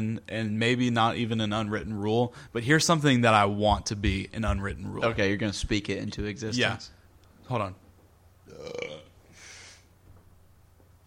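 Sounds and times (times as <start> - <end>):
speech: 0.0 - 7.8, 8.5 - 9.1
burp: 8.5 - 9.2
breathy exhale: 9.3 - 9.9.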